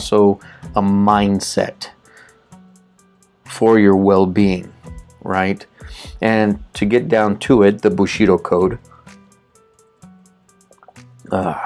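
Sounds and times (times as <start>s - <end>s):
speech: 0.0s - 2.0s, 3.6s - 8.9s, 11.3s - 11.6s
person sipping water: 10.7s - 11.1s.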